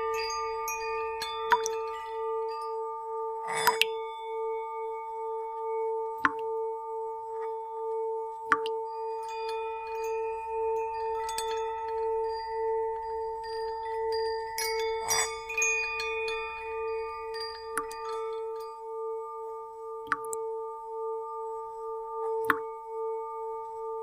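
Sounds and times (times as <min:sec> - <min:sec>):
light wind chimes: 0:00.0 - 0:24.0
singing bowl humming a steady tone: 0:00.0 - 0:24.0
bright drip-like ticks: 0:01.5 - 0:01.8, 0:08.5 - 0:08.8, 0:20.0 - 0:20.4.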